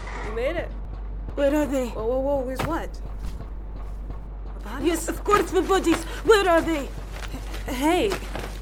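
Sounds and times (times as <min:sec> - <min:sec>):
speech: 0:00.4 - 0:00.8, 0:01.4 - 0:03.1, 0:04.7 - 0:07.0, 0:07.7 - 0:08.3
low hum: 0:02.6 - 0:04.3.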